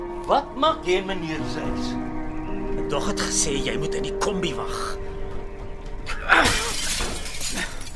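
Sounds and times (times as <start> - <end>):
speech: 0.3 - 2.2, 2.8 - 5.1
glass shattering: 6.2 - 7.9
glass shards tinkling: 6.4 - 7.9.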